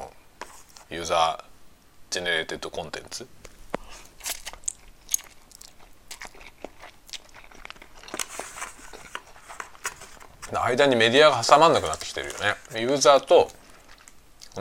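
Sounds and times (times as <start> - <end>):
speech: 0.9 - 1.5, 2.1 - 3.4, 10.5 - 13.6
crisp crunching and chewing of food during a lunch: 3.5 - 14.6.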